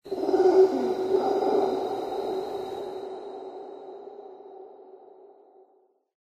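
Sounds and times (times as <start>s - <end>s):
yeti animal call in a lair: 0.0s - 2.6s.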